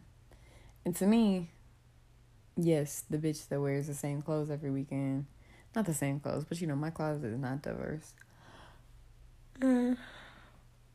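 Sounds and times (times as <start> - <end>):
speech: 0.8 - 1.6, 2.6 - 8.3, 9.6 - 10.3
person yawning: 9.6 - 10.4.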